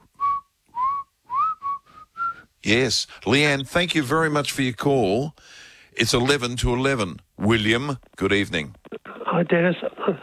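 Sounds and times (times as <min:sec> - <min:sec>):
person whistling a tune: 0:00.1 - 0:02.5
speech: 0:02.6 - 0:10.2.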